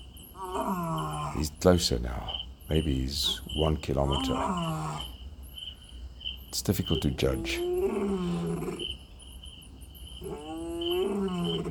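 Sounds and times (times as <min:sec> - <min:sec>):
high insect trill: 0:00.0 - 0:11.6
large cat roaring far off in the bush: 0:00.4 - 0:01.6, 0:04.0 - 0:05.1, 0:07.3 - 0:08.9, 0:10.2 - 0:11.6
speech: 0:01.4 - 0:04.9, 0:06.5 - 0:07.7.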